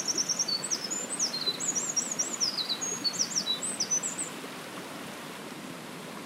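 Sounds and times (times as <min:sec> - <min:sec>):
Eurasian wren song: 0:00.0 - 0:04.3
faint background hiss: 0:00.0 - 0:06.2.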